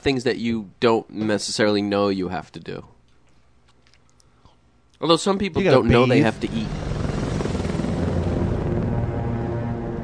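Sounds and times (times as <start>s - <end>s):
speech: 0.0s - 3.0s, 5.0s - 7.0s
helicopter rotor chop: 5.9s - 10.0s.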